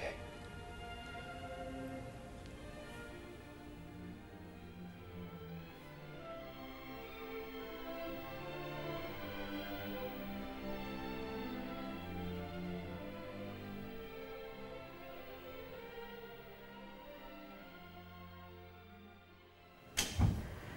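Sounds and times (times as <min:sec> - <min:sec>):
musical drone from an orchestra rehearsing: 0:00.0 - 0:20.1
door opening with a loud clunk: 0:20.0 - 0:20.7.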